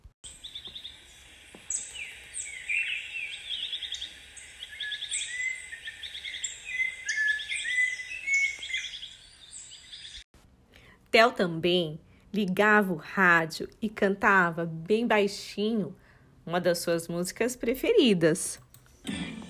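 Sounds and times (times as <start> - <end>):
small birds chirping and singing: 0.2 - 10.3
speech: 11.2 - 19.2.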